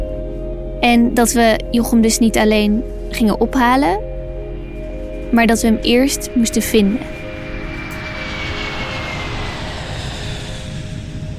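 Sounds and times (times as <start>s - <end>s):
speech: 0.8s - 4.1s, 5.3s - 7.2s
airplane engine drone in a cabin in flight during descent: 4.1s - 11.3s
faint high whine: 4.6s - 11.3s.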